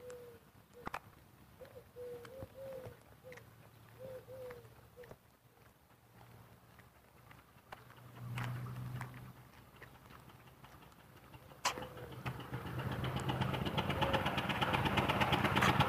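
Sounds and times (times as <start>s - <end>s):
rough, unhealthy-sounding car engine idling and revving: 7.6s - 15.8s.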